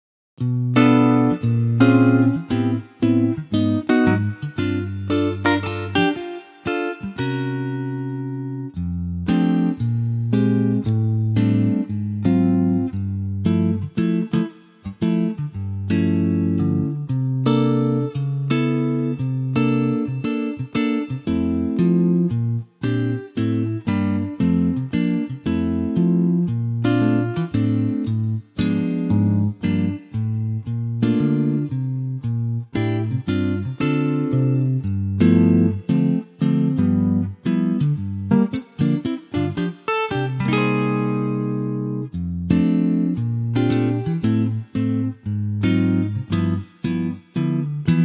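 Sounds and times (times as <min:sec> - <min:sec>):
guitar playing note F: 0:00.4 - 0:48.0.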